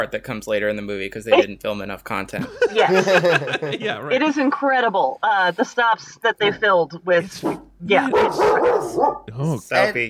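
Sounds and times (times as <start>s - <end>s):
speech: 0.0s - 10.0s
laughter: 2.4s - 4.1s
dog barking and yipping: 7.4s - 9.3s.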